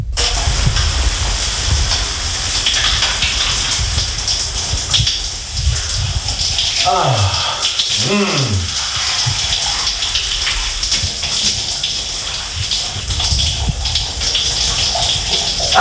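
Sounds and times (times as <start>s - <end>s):
hot-cold alternating shower water spraying: 0.2s - 15.8s
faint vocal sounds: 6.8s - 8.9s
speech: 6.9s - 7.4s, 8.0s - 8.8s.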